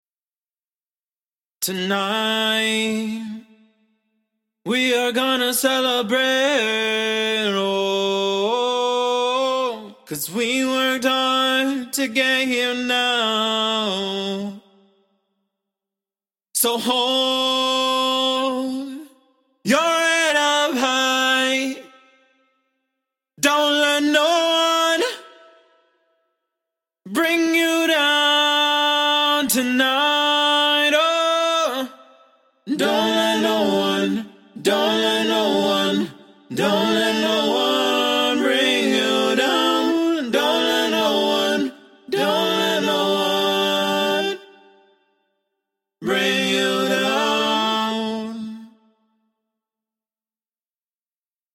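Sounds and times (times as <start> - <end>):
person singing pop vocal a cappella in A minor: 1.6 - 3.6, 4.7 - 14.7, 16.6 - 22.0, 23.4 - 25.5, 27.1 - 44.9, 46.0 - 48.8.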